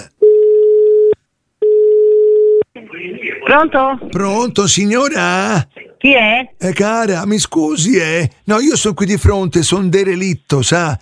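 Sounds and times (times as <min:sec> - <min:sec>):
telephone line tone on a call into a radio station: 0:00.2 - 0:02.6
speech: 0:03.0 - 0:11.0.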